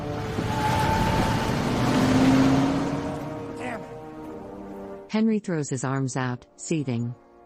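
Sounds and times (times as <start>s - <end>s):
deputy's truck engine starting and roaring as it peels out: 0.0s - 5.0s
speech: 5.1s - 7.2s.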